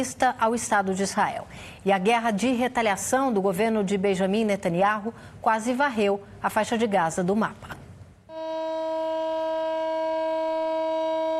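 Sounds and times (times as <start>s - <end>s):
speech: 0.0s - 7.8s
memorial siren sounding in a city: 8.3s - 11.3s.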